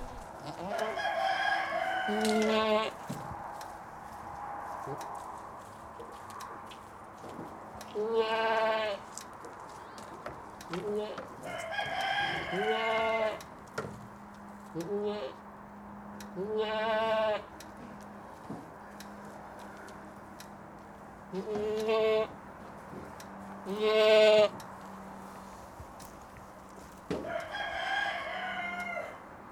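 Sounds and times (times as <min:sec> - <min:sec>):
goats bleating on a goat farm: 0:00.0 - 0:03.0, 0:07.9 - 0:09.2, 0:10.7 - 0:11.3, 0:11.9 - 0:13.4, 0:14.7 - 0:15.4, 0:16.4 - 0:17.5, 0:21.3 - 0:22.4, 0:23.6 - 0:24.6
low hum: 0:00.0 - 0:29.5.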